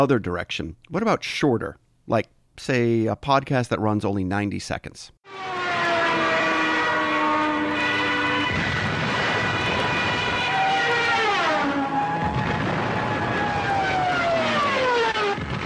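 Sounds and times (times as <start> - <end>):
speech: 0.0 - 5.6
Stuka dive bomber sirens screaming: 5.3 - 15.6
diving Stuka dive bomber engines roaring: 5.3 - 15.6.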